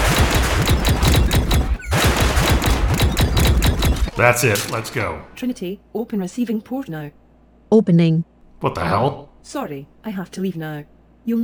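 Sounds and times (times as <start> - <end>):
rapid gunfire during an attack: 0.0 - 5.0
speech: 4.2 - 11.4.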